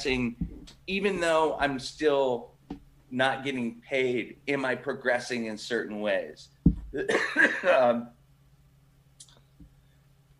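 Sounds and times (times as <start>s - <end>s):
speech: 0.0s - 2.5s, 3.1s - 8.2s
person coughing: 7.0s - 7.9s.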